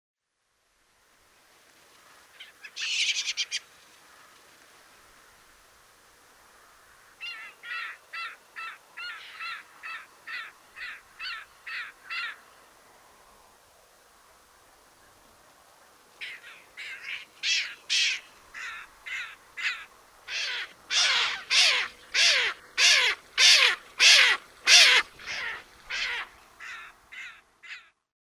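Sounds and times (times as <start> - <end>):
white-throated caracara calls: 2.1 - 4.4, 7.2 - 12.6, 16.2 - 28.0.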